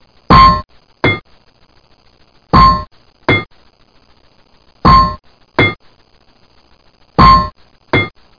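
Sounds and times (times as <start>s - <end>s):
metal hit: 0.3s - 1.2s, 2.6s - 3.5s, 4.9s - 5.8s, 7.2s - 8.2s.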